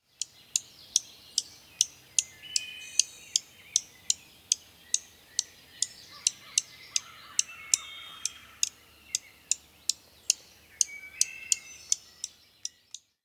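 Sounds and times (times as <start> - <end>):
Dark-eyed Junco alarm chips in NY: 0.0 - 13.2.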